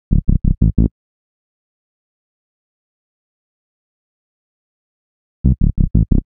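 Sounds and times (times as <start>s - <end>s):
synth bass: 0.1s - 0.9s, 5.4s - 6.2s.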